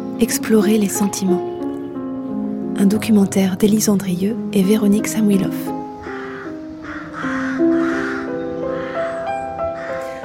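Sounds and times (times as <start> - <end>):
speech: 0.2 - 1.5, 2.8 - 5.8
rooks cawing in trees: 5.8 - 10.2.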